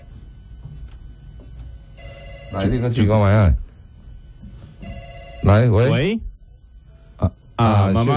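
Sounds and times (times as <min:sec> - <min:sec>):
telephone ringing: 0:02.0 - 0:03.4, 0:04.8 - 0:06.2
speech: 0:02.5 - 0:03.6, 0:05.5 - 0:06.3, 0:07.2 - 0:08.1.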